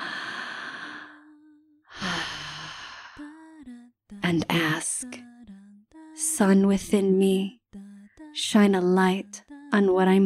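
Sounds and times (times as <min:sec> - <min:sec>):
deep breath in and out: 0:00.0 - 0:01.3, 0:01.9 - 0:03.2
speech: 0:04.3 - 0:05.3, 0:06.2 - 0:07.6, 0:08.4 - 0:10.2.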